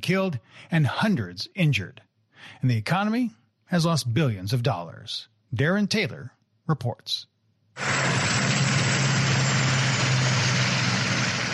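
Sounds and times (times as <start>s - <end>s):
speech: 0.0s - 8.6s
helicopter hovering overhead: 7.8s - 11.5s.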